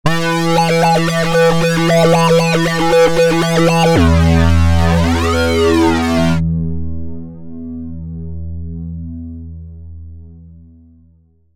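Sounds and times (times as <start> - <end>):
hard sync synthesizer: 0.1 - 9.2.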